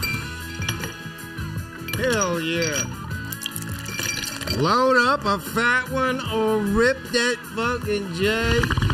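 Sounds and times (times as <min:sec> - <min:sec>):
glasses clinking together in a toast: 0:00.0 - 0:01.1, 0:01.8 - 0:04.8
speech: 0:02.0 - 0:03.0, 0:04.5 - 0:08.8.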